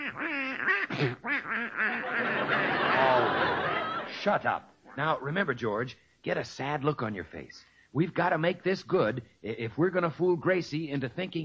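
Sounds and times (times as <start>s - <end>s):
duck quacking: 0.0s - 3.1s
speech: 1.0s - 1.8s, 4.2s - 11.4s
laughter: 1.9s - 4.4s.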